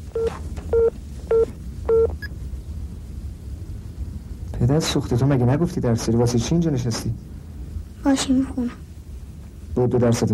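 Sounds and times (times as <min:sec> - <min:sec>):
low rumbling hum: 0:00.0 - 0:10.3
telephone keypad dialing tones: 0:00.2 - 0:02.3
speech: 0:04.7 - 0:07.3, 0:08.0 - 0:08.8, 0:09.8 - 0:10.3.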